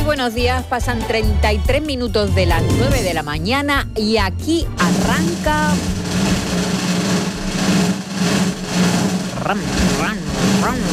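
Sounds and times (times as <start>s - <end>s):
speech: 0.1s - 6.3s, 9.4s - 10.9s
small motorcycle engine revving: 4.8s - 10.9s.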